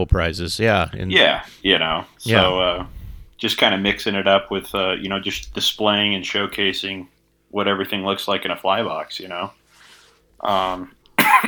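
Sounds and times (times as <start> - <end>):
speech: 0.0 - 9.6, 10.4 - 11.4
person coughing from breathing in UV resin fumes at a fly-tying table: 10.6 - 11.4.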